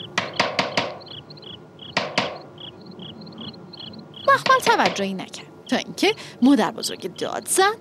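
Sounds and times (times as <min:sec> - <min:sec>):
cricket-like chirping: 0:00.0 - 0:05.9, 0:06.8 - 0:07.7
knocking on a door: 0:00.2 - 0:01.2, 0:02.0 - 0:02.5, 0:04.3 - 0:05.1
speech: 0:04.4 - 0:07.7.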